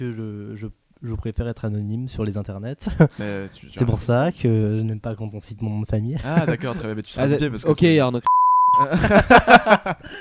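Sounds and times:
speech: 0.0s - 10.1s
single-pitched censor bleep: 8.3s - 8.9s
laughter: 8.8s - 10.1s.

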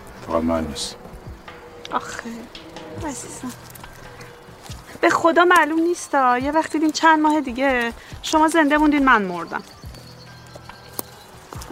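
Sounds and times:
steady low hum: 0.0s - 6.6s
donkey hooves clopping: 0.0s - 11.7s
speech: 0.3s - 1.1s, 1.9s - 3.7s, 5.0s - 9.8s.

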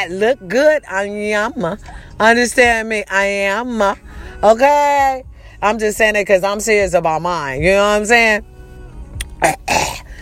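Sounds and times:
speech: 0.0s - 8.5s, 9.4s - 9.8s
person clearing throat: 9.4s - 10.1s.

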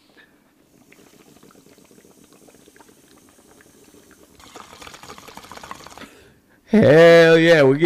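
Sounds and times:
water bubbling in a bong: 0.0s - 6.2s
speech: 6.7s - 7.8s.

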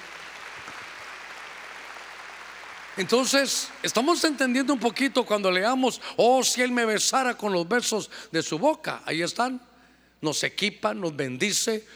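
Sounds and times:
crowd clapping loudly: 0.0s - 5.9s
speech: 3.0s - 11.9s.

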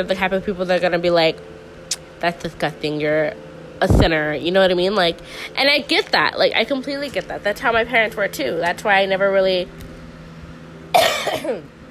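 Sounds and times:
speech: 0.0s - 1.5s, 2.2s - 9.8s, 11.3s - 11.7s
single harsh raspy cough: 10.9s - 11.7s.

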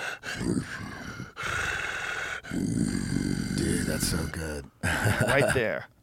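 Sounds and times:
person imitating a big cat's growl: 0.0s - 1.8s, 2.4s - 4.4s
speech: 0.4s - 0.9s, 2.6s - 6.0s
laughter: 4.8s - 5.8s.

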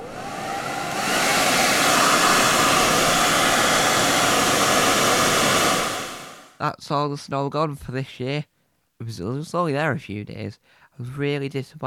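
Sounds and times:
hair dryer blowing: 0.0s - 6.6s
speech: 6.8s - 11.8s.

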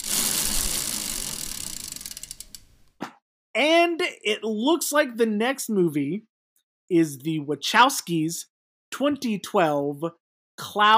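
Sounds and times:
prize wheel spinning and clicking: 0.0s - 2.6s
speech: 3.6s - 6.3s, 6.9s - 10.9s.

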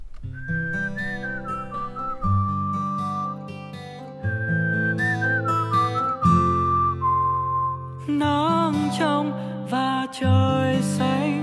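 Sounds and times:
high whistle-like instrumental lead melody: 0.0s - 8.9s
speech: 10.1s - 11.3s.

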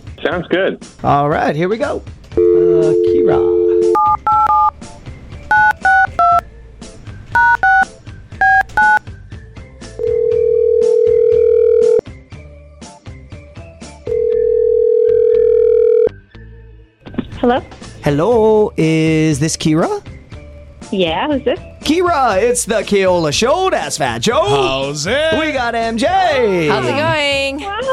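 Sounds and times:
speech: 0.2s - 3.6s, 17.4s - 20.1s, 20.9s - 27.9s
telephone ringback tone: 2.4s - 4.7s, 10.0s - 12.0s, 14.1s - 16.1s
touch-tone telephone keypad beeps: 2.4s - 4.8s, 5.5s - 6.4s, 7.4s - 9.0s.

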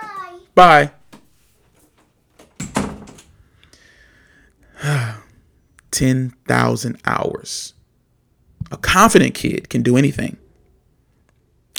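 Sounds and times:
speech: 0.6s - 1.0s, 6.0s - 7.8s, 8.6s - 10.4s
door swinging shut: 2.4s - 3.4s.

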